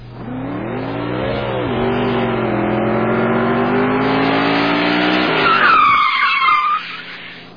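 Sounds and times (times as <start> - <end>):
motorcycle accelerating: 0.0 - 6.0
tires screeching under hard braking: 0.0 - 7.5.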